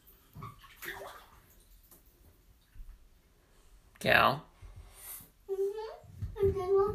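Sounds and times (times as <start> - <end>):
water splashing and sloshing in a bathtub: 0.0 - 4.4
speech: 4.0 - 4.5.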